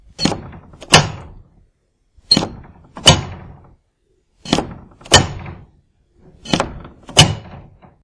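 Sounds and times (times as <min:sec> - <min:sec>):
garage door lock: 0:00.0 - 0:01.4, 0:02.3 - 0:03.8, 0:04.4 - 0:08.0.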